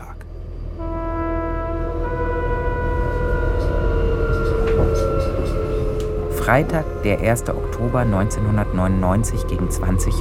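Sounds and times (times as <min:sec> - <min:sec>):
S-Bahn commuter train riding: 0:00.0 - 0:10.1
speech: 0:06.5 - 0:10.1.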